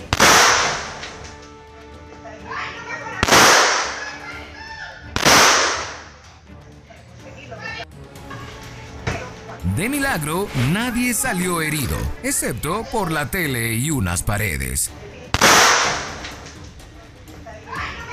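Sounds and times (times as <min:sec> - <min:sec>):
gunshots fired at a family: 0:00.0 - 0:00.9, 0:03.2 - 0:04.0, 0:05.2 - 0:06.1, 0:15.4 - 0:16.1
speech: 0:09.8 - 0:15.1.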